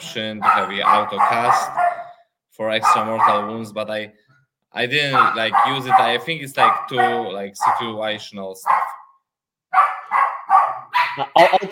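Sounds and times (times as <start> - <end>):
speech: 0.1 - 1.9, 2.6 - 9.0, 11.2 - 11.7
dog barking: 0.3 - 2.2, 2.8 - 3.7, 5.0 - 9.1, 9.7 - 11.7.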